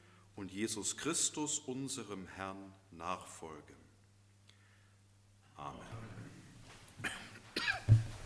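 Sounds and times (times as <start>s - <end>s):
speech: 0.4s - 3.9s, 5.6s - 6.3s
person coughing in a quiet room: 7.0s - 8.1s.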